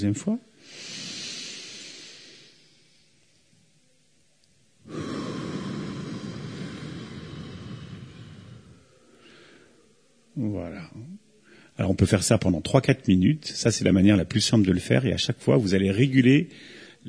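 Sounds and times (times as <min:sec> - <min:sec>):
speech: 0:00.0 - 0:01.0, 0:11.8 - 0:17.0
slow breathing out during a relaxation breathing exercise: 0:00.6 - 0:03.5, 0:04.8 - 0:10.1, 0:16.5 - 0:17.0.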